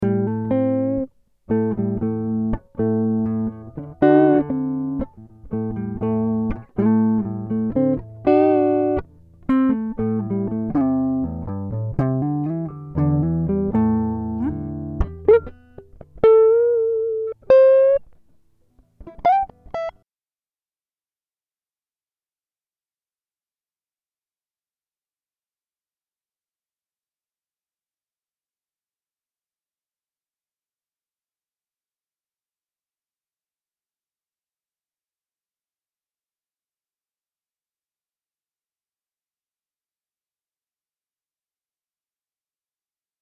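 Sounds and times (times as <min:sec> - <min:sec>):
guitar improvisation: 0:00.0 - 0:20.0.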